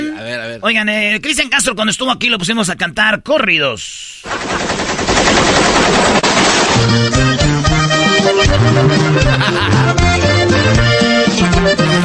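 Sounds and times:
speech: 0:00.4 - 0:10.9
automatic gunfire bursts: 0:04.3 - 0:07.4
band music: 0:06.8 - 0:12.0
laughter: 0:08.8 - 0:10.2, 0:11.8 - 0:12.0.

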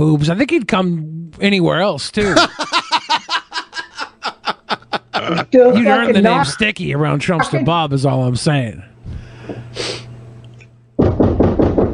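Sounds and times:
speech: 0:00.0 - 0:02.8, 0:05.3 - 0:10.0
faint hum: 0:00.0 - 0:11.9
laughter: 0:02.2 - 0:06.6
forceful police-style knocking on a door: 0:11.0 - 0:11.9.

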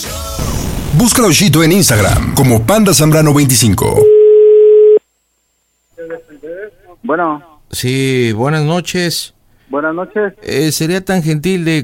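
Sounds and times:
speech: 0:01.0 - 0:04.2, 0:07.1 - 0:11.8
steady telephone tone while dialing a call: 0:04.0 - 0:05.0.

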